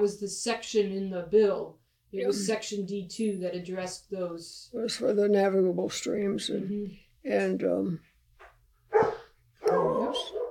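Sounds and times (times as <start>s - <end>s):
speech: 0.0s - 8.1s
dog barking: 8.9s - 10.5s.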